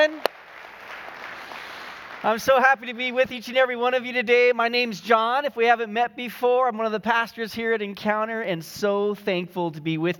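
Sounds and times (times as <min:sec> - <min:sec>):
church audience applause at a service: 0:00.0 - 0:02.6
speech: 0:02.2 - 0:10.1.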